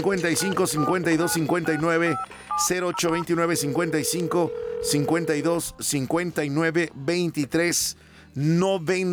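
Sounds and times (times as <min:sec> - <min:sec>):
sustained steady telephone dial tone on a phone line: 0:00.0 - 0:05.5
telephone keypad beeps while a number is dialed: 0:00.0 - 0:05.5
speech: 0:00.0 - 0:09.1.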